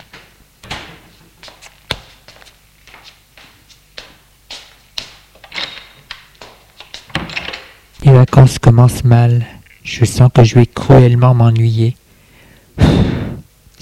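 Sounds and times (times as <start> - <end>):
refrigerator door opening and closing in a kitchen: 0.0 - 1.1, 7.1 - 7.8
clunks, taps and rattles of handling in a kitchen: 5.4 - 7.8
speech: 8.1 - 12.0.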